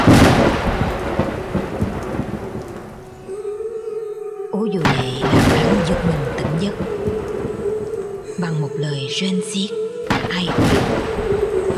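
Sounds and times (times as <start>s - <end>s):
night thunderstorm thunder crash: 0.0s - 3.3s, 4.8s - 8.6s, 10.1s - 11.7s
steady rain in a night thunderstorm: 0.0s - 3.4s, 4.8s - 9.0s, 10.1s - 11.7s
speech: 9.1s - 9.8s.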